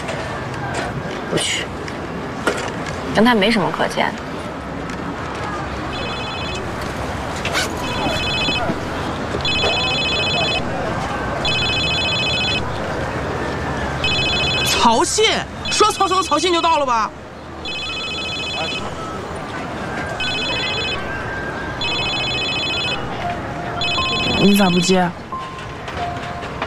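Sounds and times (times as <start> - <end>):
outdoor noise: 0.0 - 26.6
mobile phone ringing with incoming call: 5.9 - 7.0, 7.8 - 13.0, 14.0 - 16.9, 17.6 - 19.4, 20.1 - 25.4.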